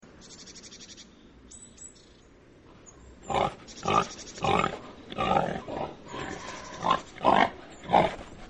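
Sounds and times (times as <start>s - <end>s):
faint background noise: 0.0s - 8.4s
wild boar grunting: 3.2s - 8.4s.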